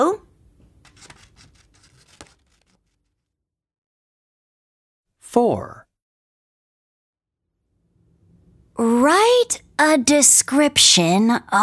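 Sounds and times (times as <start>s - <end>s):
paper rustling: 0.2s - 3.0s
scissors cutting out a paper shape: 0.6s - 2.8s
speech: 5.4s - 5.8s, 8.8s - 11.6s.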